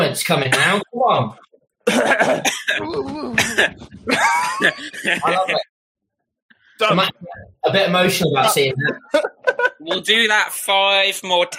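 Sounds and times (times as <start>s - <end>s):
speech: 0.2s - 5.7s, 6.8s - 11.5s
laughter: 1.9s - 5.6s, 8.5s - 10.3s
person performing exaggerated theatrical coughing: 1.9s - 5.6s
strained vocal groans: 2.0s - 3.8s.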